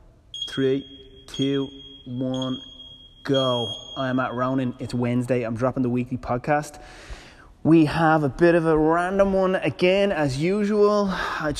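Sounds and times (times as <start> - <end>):
high piercing electronic timer tone: 0.4 - 5.1
speech: 0.6 - 11.5.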